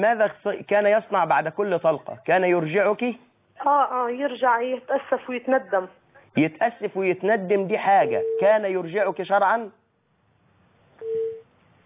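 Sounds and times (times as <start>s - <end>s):
speech: 0.0s - 9.8s
faint hiss: 0.0s - 11.8s
telephone busy tone after a call is cut off: 11.0s - 11.4s.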